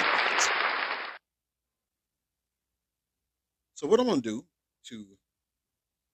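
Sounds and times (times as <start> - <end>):
crowd applause: 0.0 - 1.2
speech: 3.8 - 5.2.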